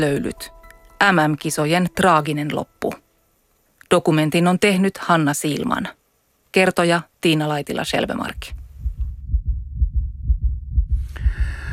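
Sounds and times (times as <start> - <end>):
speech: 0.0 - 3.0, 3.9 - 8.6
heavy rapid heartbeat of a sauna competitor: 7.9 - 11.7.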